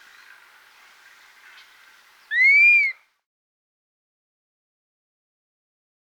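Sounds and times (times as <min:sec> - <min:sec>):
dusky-capped flycatcher atriceps whistle in the Andes of South America: 0:02.3 - 0:03.0.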